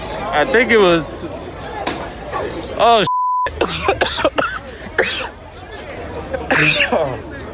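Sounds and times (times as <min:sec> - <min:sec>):
noisy crowd with overlapping voices and babble: 0:00.0 - 0:07.5
speech: 0:00.4 - 0:01.4, 0:02.8 - 0:03.1
people coughing and clearing throats after being tear gassed: 0:03.5 - 0:05.4, 0:06.4 - 0:07.2.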